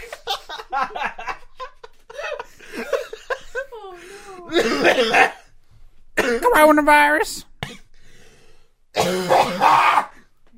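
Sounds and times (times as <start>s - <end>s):
laughter: 0.0s - 5.4s
person coughing with a phlegmy rasp: 4.3s - 5.5s, 6.2s - 6.6s, 9.0s - 10.2s
speech: 4.5s - 5.4s, 6.6s - 7.5s.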